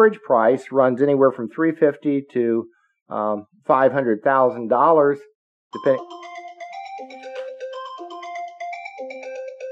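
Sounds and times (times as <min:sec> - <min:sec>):
speech: 0:00.0 - 0:06.3
phone ringtone for an incoming call with stepping electronic melody: 0:05.8 - 0:09.7.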